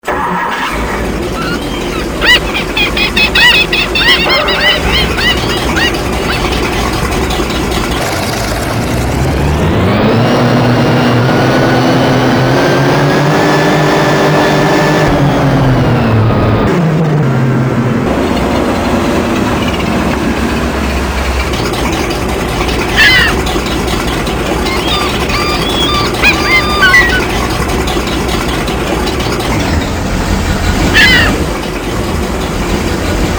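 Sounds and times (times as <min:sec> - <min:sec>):
Riva Aquarama motorboat: 0:00.0 - 0:33.3
laughter: 0:00.6 - 0:08.0, 0:22.8 - 0:31.5.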